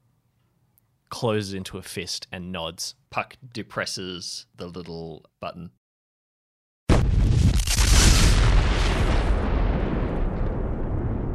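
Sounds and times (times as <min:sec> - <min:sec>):
speech: 0:01.2 - 0:05.8
explosion detonated in a building's hallway: 0:06.9 - 0:11.3
long rumbling crashing roar: 0:06.9 - 0:11.3.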